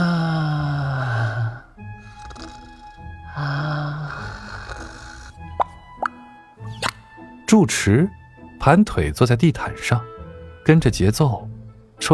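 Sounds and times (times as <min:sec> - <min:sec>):
person imitating snoring in exaggerated fashion: 0:00.0 - 0:05.6
speech: 0:07.5 - 0:12.1.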